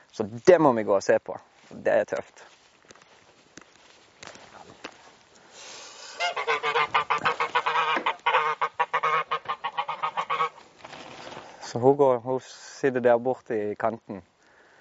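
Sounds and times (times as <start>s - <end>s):
speech: 0.2s - 2.6s, 11.7s - 14.3s
faint rustling: 1.4s - 11.9s
mother duck honking in an enclosure: 6.1s - 10.6s.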